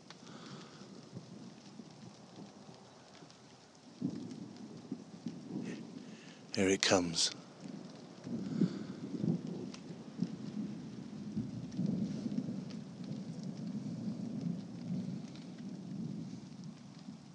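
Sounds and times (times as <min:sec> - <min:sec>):
heavy rain pouring after a hot 35-degree day: 0:00.0 - 0:17.3
thunder rumbling over a street: 0:04.0 - 0:16.4
speech: 0:06.6 - 0:07.4.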